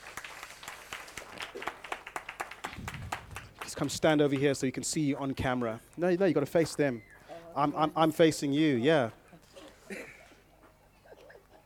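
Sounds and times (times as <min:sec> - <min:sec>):
audience applause: 0:00.0 - 0:04.6
speech: 0:03.7 - 0:09.2.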